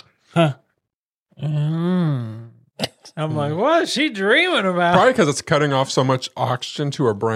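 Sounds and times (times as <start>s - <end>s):
voice imitating a person snoring and moaning in their sleep: 0.0s - 0.7s, 1.3s - 3.2s
speech: 0.4s - 0.6s, 3.2s - 7.3s.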